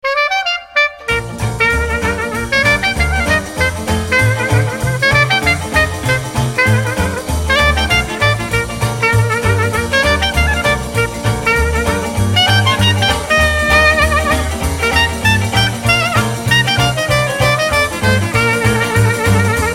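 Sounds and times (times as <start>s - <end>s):
creole jazz ringtone: 1.0s - 19.7s.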